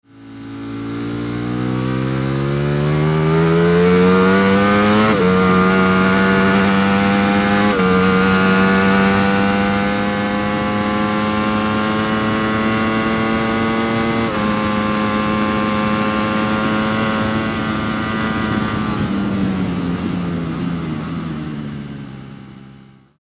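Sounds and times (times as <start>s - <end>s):
Ducati Panigale V4 motorcycle engine: 0.0s - 23.2s.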